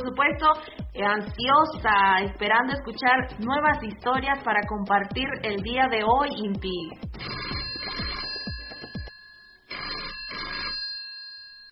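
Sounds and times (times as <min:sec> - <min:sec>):
speech: 0:00.0 - 0:07.6
telephone ringing for an incoming call to a radio show: 0:07.0 - 0:11.6.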